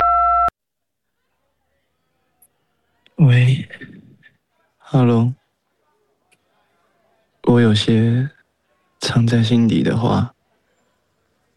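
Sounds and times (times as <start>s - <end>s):
voicemail beep before leaving a message: 0.0s - 0.5s
speech: 3.3s - 4.0s, 4.9s - 5.4s, 7.5s - 8.4s, 9.0s - 10.4s.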